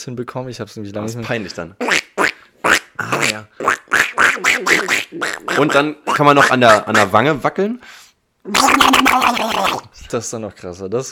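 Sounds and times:
speech: 0.0 - 2.0, 5.6 - 11.0
person imitating duck quacks: 1.8 - 7.2, 8.5 - 9.9.

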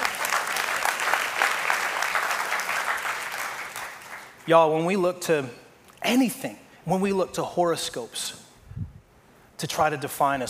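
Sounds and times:
audience clapping: 0.0 - 4.4
speech: 4.5 - 8.4, 9.6 - 10.4.

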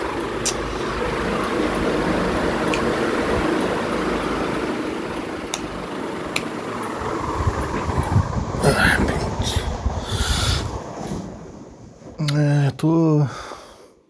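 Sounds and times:
electric fan running with a whooshing hum: 0.0 - 12.2
faint sharp clicks: 2.7 - 3.0, 5.5 - 6.6.

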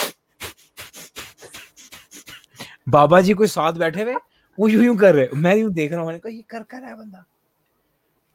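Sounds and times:
voice imitating forceful rhythmic yogic breathing exercise: 0.0 - 3.0
speech: 2.9 - 7.3.

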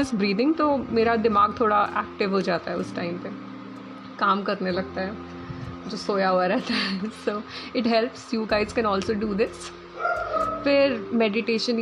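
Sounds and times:
speech: 0.0 - 3.5, 4.2 - 5.3, 5.9 - 11.8
steady tonal hum: 0.0 - 11.8
dog barking and yelping: 10.0 - 10.7.

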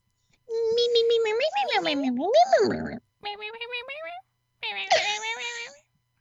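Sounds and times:
cat chirping: 1.3 - 5.8
speech: 1.9 - 4.2.

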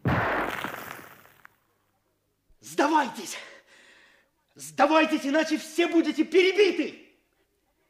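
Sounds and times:
hand grenade exploding in a narrow corridor: 0.0 - 1.6
sharp small crack: 0.0 - 1.6
speech: 2.8 - 3.6, 4.6 - 7.0.

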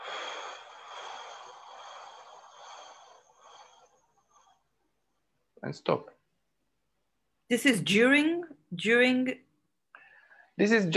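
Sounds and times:
person breathing out during a guided breathing exercise: 0.0 - 4.6
speech: 5.6 - 6.2, 7.5 - 9.4, 10.6 - 10.9.

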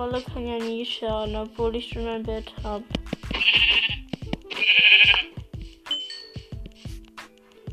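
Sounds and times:
speech: 0.0 - 3.6
sharp clicking taps: 2.9 - 5.3
sheep bleating: 3.3 - 5.3.

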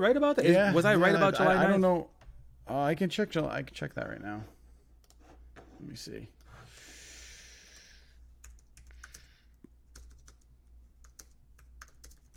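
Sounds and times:
speech: 0.0 - 2.1, 2.7 - 4.6, 5.8 - 6.4
typing on a computer keyboard: 7.7 - 12.3.

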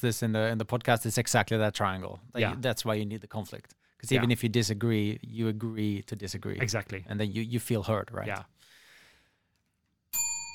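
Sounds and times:
speech: 0.0 - 8.6
soft breathy exhale: 8.6 - 9.4
real bell ringing: 10.1 - 10.5.

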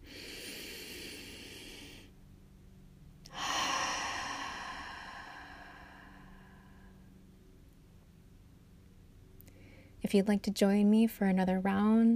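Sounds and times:
deep breath in: 0.0 - 2.1, 3.3 - 7.0
speech: 10.1 - 12.1.

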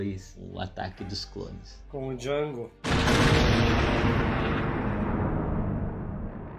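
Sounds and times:
speech: 0.0 - 4.8
seismic charge explosion effect with heavy rumble: 2.8 - 6.5.

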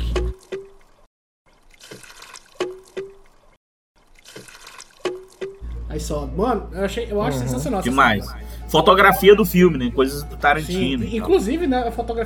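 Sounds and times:
water trickling from a Japanese bamboo water fountain: 0.0 - 5.8
Japanese bamboo water fountain giving hollow wooden knocks: 1.5 - 3.4, 4.0 - 5.6
speech: 6.0 - 12.2.

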